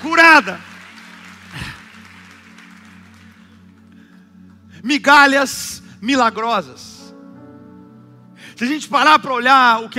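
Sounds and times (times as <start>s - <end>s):
speech: 0.0s - 0.7s, 4.8s - 6.9s, 8.6s - 9.9s
audience applauding: 0.0s - 4.0s.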